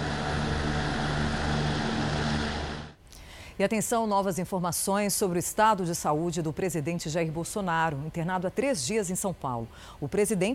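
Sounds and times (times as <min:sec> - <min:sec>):
helicopter flying overhead: 0:00.0 - 0:03.0
speech: 0:03.6 - 0:10.5.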